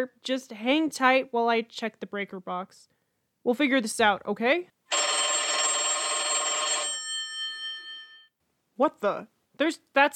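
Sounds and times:
speech: 0:00.0 - 0:05.0, 0:08.8 - 0:10.1
trilling telephone bell ringing: 0:04.9 - 0:08.3.

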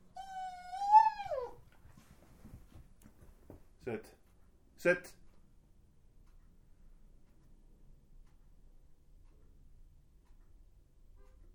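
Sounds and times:
dog whining: 0:00.1 - 0:01.6
quiet shuffling: 0:01.2 - 0:04.5
speech: 0:03.9 - 0:04.2, 0:04.8 - 0:05.2.

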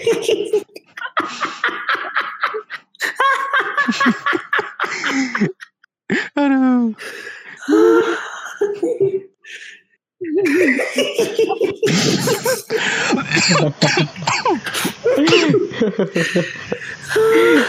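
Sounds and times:
speech: 0:00.0 - 0:00.7, 0:16.0 - 0:16.6
laughter: 0:00.0 - 0:05.8, 0:07.6 - 0:17.6
person coughing while eating spicy food: 0:04.7 - 0:06.4, 0:11.8 - 0:15.8.

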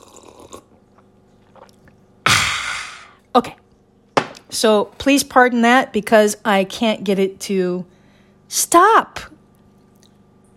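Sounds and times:
person sipping a drink and swallowing: 0:00.0 - 0:03.2
speech: 0:03.4 - 0:03.6, 0:04.5 - 0:09.3.

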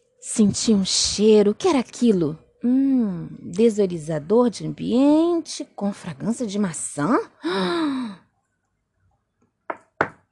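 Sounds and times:
speech: 0:00.3 - 0:08.2
knocking on a wooden door: 0:09.7 - 0:10.2.

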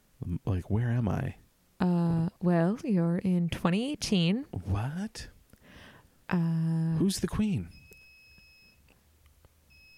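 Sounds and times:
low room rumble: 0:00.0 - 0:07.0
speech: 0:00.2 - 0:05.4, 0:06.3 - 0:07.8
high-pitched electronic appliance beep: 0:07.6 - 0:08.8, 0:09.7 - 0:09.9.

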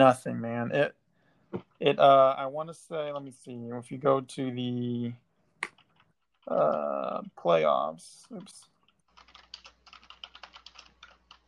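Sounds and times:
speech: 0:00.0 - 0:05.2, 0:06.4 - 0:08.7
rapid typing on a work computer keyboard: 0:05.6 - 0:06.9, 0:08.2 - 0:11.4.

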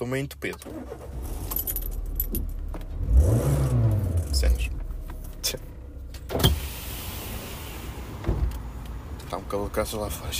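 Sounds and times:
speech: 0:00.0 - 0:01.2, 0:02.3 - 0:02.6, 0:05.4 - 0:05.7, 0:09.3 - 0:10.3
car engine cranking and starting: 0:00.3 - 0:10.3
car keys jangling: 0:00.4 - 0:02.9.

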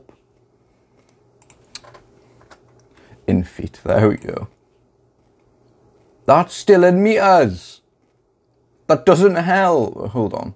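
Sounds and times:
hiss: 0:00.0 - 0:10.5
computer keyboard typing as a height is entered: 0:01.4 - 0:02.0
speech: 0:03.3 - 0:04.6, 0:06.3 - 0:07.7, 0:08.9 - 0:10.5.

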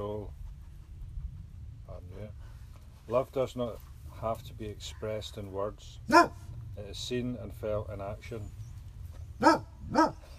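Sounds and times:
low hum: 0:00.0 - 0:10.3
speech: 0:03.1 - 0:08.6, 0:09.4 - 0:10.3
dog barking: 0:06.1 - 0:06.5, 0:09.4 - 0:10.3.

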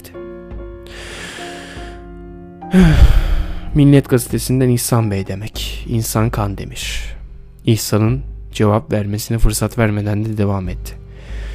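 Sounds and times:
deep drawn-out breath over a telephone line: 0:00.9 - 0:02.1, 0:11.1 - 0:11.5
speech: 0:02.7 - 0:11.4.

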